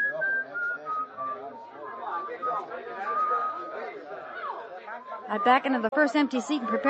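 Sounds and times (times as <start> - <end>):
person whistling a wandering tune in short clear phrases: 0.0 - 3.6
crowd chatter and indistinct voices: 0.0 - 6.8
speech: 5.3 - 6.8.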